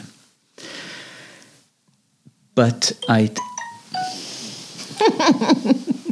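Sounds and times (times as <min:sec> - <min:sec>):
speech: 0:02.6 - 0:03.5, 0:05.3 - 0:05.9
mobile phone ringtone: 0:03.0 - 0:04.7.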